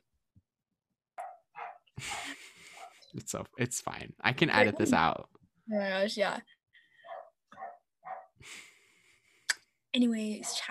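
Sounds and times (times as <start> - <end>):
dog barking: 1.2 - 3.0, 7.0 - 8.4
laughter: 2.0 - 5.2
speech: 3.2 - 6.6, 8.4 - 8.7, 10.0 - 10.6.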